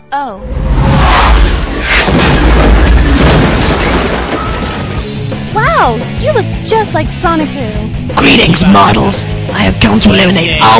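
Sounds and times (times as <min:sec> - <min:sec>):
speech: 0:00.1 - 0:00.7, 0:05.8 - 0:10.7
missile explosion: 0:00.5 - 0:05.3.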